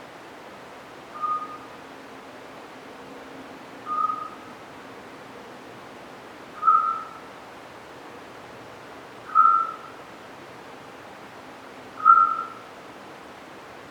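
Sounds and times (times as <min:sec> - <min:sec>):
Eurasian scops owl calling with whistled toots: 0:01.1 - 0:01.7, 0:03.8 - 0:04.5, 0:06.6 - 0:07.3, 0:09.3 - 0:10.0, 0:12.0 - 0:12.7.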